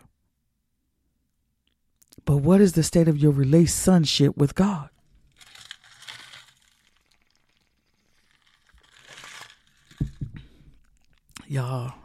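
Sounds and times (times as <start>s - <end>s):
speech: 2.2s - 4.9s
ice crackling and crunching in a drink of water as it is drunk: 4.8s - 12.0s.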